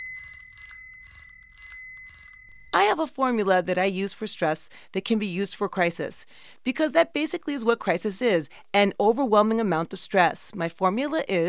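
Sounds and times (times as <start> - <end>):
bicycle bell ringing: 0.0 - 2.8
speech: 2.8 - 11.4.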